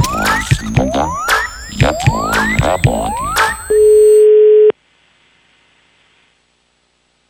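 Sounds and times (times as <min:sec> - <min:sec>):
burst of chirpy electronic sounds: 0:00.0 - 0:04.2
outgoing call ringback tone: 0:00.0 - 0:04.7.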